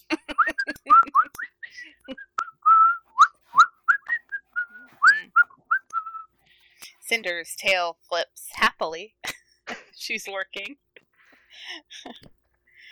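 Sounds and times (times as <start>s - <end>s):
person whistling a tune while washing dishes: 0.3s - 6.3s
speech: 7.1s - 9.2s, 10.0s - 10.8s.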